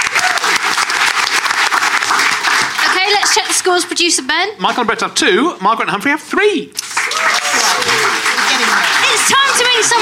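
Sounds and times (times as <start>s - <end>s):
audience applause during a panel quiz game: 0.0s - 3.9s, 6.8s - 10.0s
speech: 3.5s - 6.9s, 9.2s - 10.0s.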